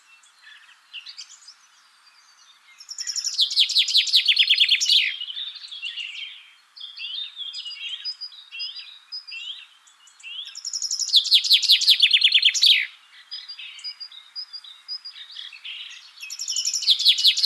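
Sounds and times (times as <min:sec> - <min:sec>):
Common chaffinch Fringilla coelebs singing: 0:00.0 - 0:17.4
faint bird twittering: 0:00.0 - 0:17.4.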